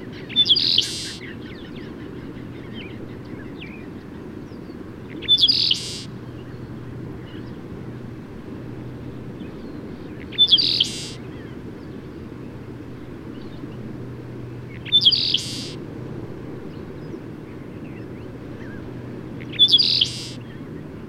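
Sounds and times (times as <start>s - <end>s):
low rumbling hum: 0.0s - 21.0s
bird chirping: 0.2s - 3.9s, 4.5s - 7.6s, 9.4s - 12.0s, 14.7s - 15.8s, 19.4s - 20.6s.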